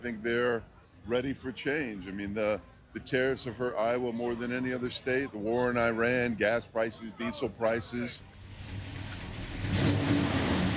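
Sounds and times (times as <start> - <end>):
speech: 0.0 - 8.8
vintage car engines revving at a classic car show in Oskaloosa Iowa: 8.3 - 10.7.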